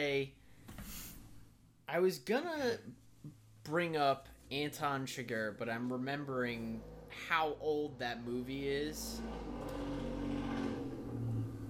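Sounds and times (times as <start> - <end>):
speech: 0.0 - 0.4, 1.9 - 9.9
loud car engine driving past outside: 6.4 - 11.6.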